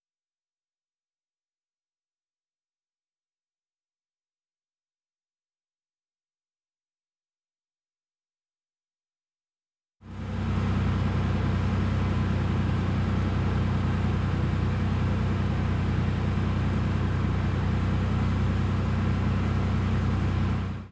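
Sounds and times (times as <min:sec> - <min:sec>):
truck engine idling: 0:10.1 - 0:20.9.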